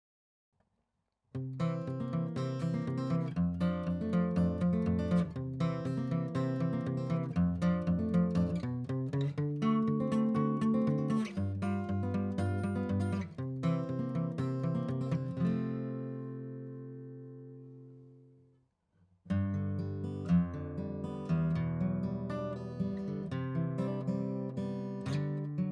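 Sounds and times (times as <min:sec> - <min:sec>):
Gibson Hummingbird guitar: 0:01.4 - 0:18.6, 0:19.2 - 0:25.7.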